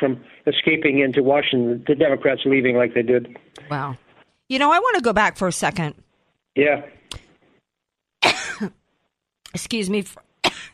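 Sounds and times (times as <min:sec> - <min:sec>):
speech: 0:00.0 - 0:06.0, 0:06.6 - 0:07.0, 0:08.6 - 0:08.8, 0:09.5 - 0:10.2
person coughing from allergies: 0:08.2 - 0:08.7.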